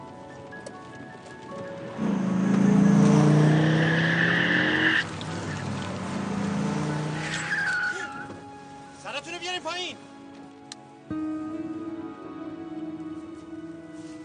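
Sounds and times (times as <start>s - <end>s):
car engine roaring: 0.9s - 8.4s
tires screeching: 1.7s - 8.4s.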